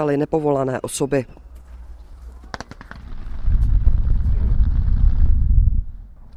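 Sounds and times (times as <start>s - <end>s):
speech: 0.0s - 1.4s
sharp cracks of construction-site blasting: 2.4s - 5.3s
construction-site blasting explosion rumble: 2.6s - 6.2s.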